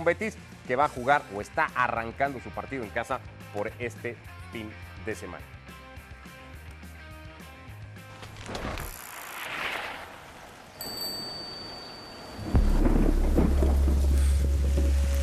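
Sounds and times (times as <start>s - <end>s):
speech: 0.0s - 5.6s
heavy rain pouring at a surfing spot: 12.2s - 15.2s
loud deep rumble: 12.6s - 15.2s.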